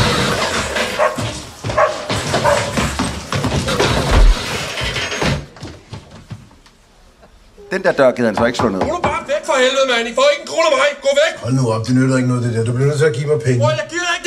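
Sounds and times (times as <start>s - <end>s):
dog yelping and barking: 1.0s - 1.2s, 1.8s - 2.8s
dog tumbling down stairs with heavy thuds and bumps in a film scene: 1.0s - 6.6s
speech: 7.8s - 14.2s.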